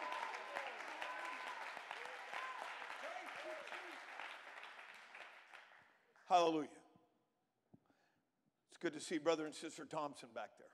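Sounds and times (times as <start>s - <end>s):
crowd shouting in praise: 0.0s - 4.6s
audience clapping: 0.0s - 6.4s
speech: 6.3s - 6.8s, 8.8s - 10.7s.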